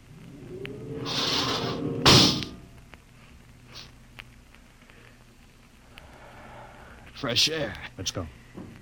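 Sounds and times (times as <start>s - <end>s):
spaceship outer airlock door opening with rushing air: 0.3s - 2.6s
speech: 7.2s - 8.7s.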